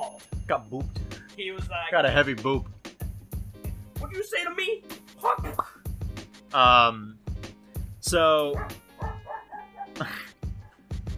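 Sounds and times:
speech: 0:00.5 - 0:02.8, 0:04.1 - 0:05.7, 0:06.5 - 0:07.2, 0:08.0 - 0:08.8, 0:10.0 - 0:10.3
dog whining and yelping: 0:08.6 - 0:10.0.

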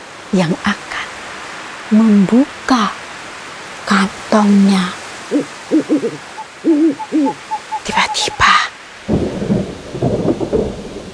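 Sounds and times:
steady rush of rain: 0:00.0 - 0:11.1
speech: 0:00.3 - 0:00.9, 0:01.9 - 0:03.0, 0:03.9 - 0:08.7
deep rolling rumbles: 0:09.0 - 0:11.1.

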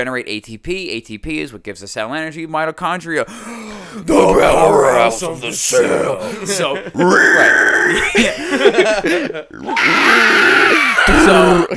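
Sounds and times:
speech: 0:00.0 - 0:11.7
laughter: 0:04.2 - 0:11.7
person voicing a pig squeal with snorting sounds: 0:07.0 - 0:08.2, 0:09.5 - 0:11.7.

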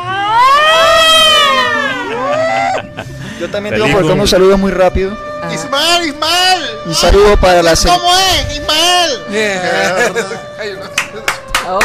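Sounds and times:
loud emergency vehicle siren wailing with rising and falling sweeps: 0:00.0 - 0:02.8
laughter: 0:01.2 - 0:04.1, 0:09.4 - 0:11.5
speech: 0:03.5 - 0:11.0, 0:11.7 - 0:11.8.

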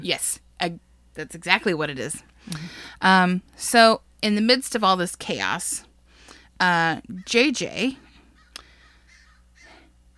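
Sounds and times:
speech: 0:00.0 - 0:05.9, 0:06.6 - 0:08.0
crows cawing: 0:08.3 - 0:10.1.

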